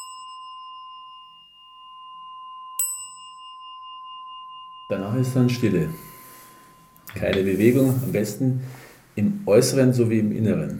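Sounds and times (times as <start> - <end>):
rod bell rung to begin a meditation: 0.0 - 8.0
speech: 4.9 - 6.1, 7.1 - 10.7.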